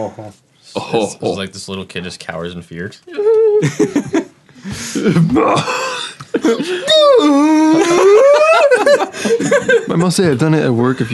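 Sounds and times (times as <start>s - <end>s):
speech: 0.0s - 11.1s
laughter: 3.1s - 10.2s
human voice imitating whale calls: 6.8s - 8.4s.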